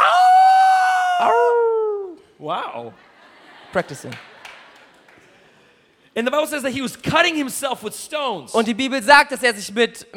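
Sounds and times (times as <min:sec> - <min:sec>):
person imitating a wolf howl: 0:00.0 - 0:02.2
speech: 0:02.5 - 0:03.1, 0:03.7 - 0:04.3, 0:06.2 - 0:10.1
laughter: 0:02.8 - 0:05.7.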